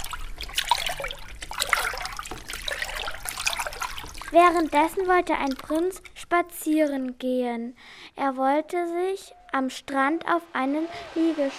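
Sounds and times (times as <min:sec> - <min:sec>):
water splashing and sloshing from a swimming animal: 0:00.0 - 0:07.0, 0:10.4 - 0:11.5
speech: 0:04.3 - 0:11.5.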